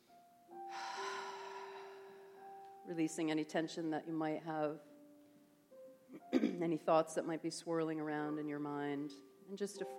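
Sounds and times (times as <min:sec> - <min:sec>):
deep slow centering breath during a guided meditation: 0:00.7 - 0:02.6
speech: 0:02.9 - 0:04.9, 0:06.6 - 0:09.9.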